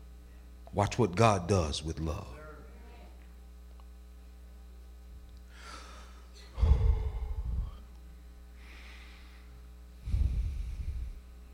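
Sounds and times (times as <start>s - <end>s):
speech: 0.7s - 2.4s
slow deep breathing in and blowing out: 5.5s - 7.9s, 8.6s - 11.4s.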